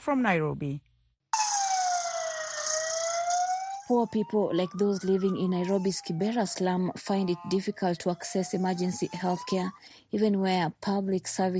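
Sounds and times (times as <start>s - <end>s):
speech: 0.0s - 0.9s, 3.9s - 11.5s
ambulance siren wailing: 1.4s - 9.9s.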